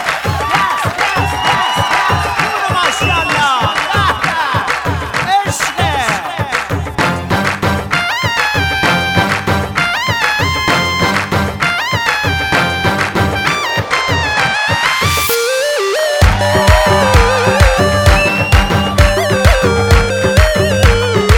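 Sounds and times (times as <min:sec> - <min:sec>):
rapid clapping: 0:00.0 - 0:15.4, 0:16.2 - 0:21.3
crowd cheering: 0:00.0 - 0:21.3
high-pitched screams: 0:00.3 - 0:04.5, 0:16.3 - 0:19.1
shrill whistles: 0:00.4 - 0:04.5, 0:13.5 - 0:19.8.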